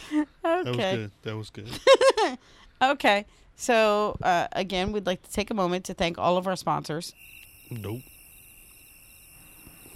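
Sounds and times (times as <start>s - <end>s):
speech: 0.1s - 8.1s
person murmuring: 0.7s - 1.7s
cricket chirping sound effect: 7.0s - 9.9s.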